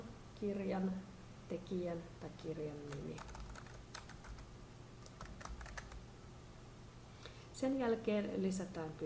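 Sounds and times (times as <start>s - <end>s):
low steady hum: 0.0s - 9.0s
speech: 0.4s - 3.4s, 7.6s - 9.0s
quiet computer keyboard typing: 2.8s - 6.0s.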